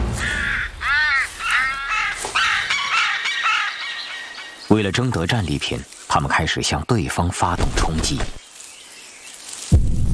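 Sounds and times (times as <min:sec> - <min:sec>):
carrion crow cawing harshly while stealing fish: 0:00.1 - 0:04.6
speech: 0:04.7 - 0:08.4.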